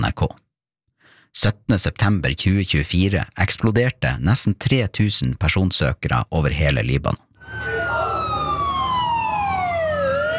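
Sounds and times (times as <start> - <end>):
speech: 0.2 - 0.4, 1.3 - 7.7
ambulance siren wailing: 7.4 - 10.3.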